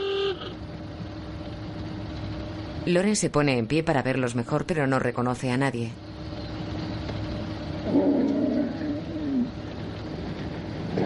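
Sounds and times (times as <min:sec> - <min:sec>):
convertible car horn blast at people on camels in the desert: 0:00.0 - 0:00.5
convertible Rolls-Royce rumbling along a desert track: 0:00.0 - 0:11.0
speech: 0:02.8 - 0:06.1.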